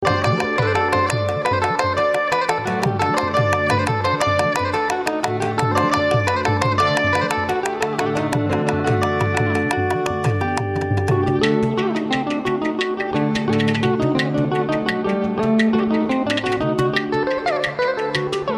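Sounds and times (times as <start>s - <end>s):
mandolin Carnatic music ringtone: 0.0s - 18.5s.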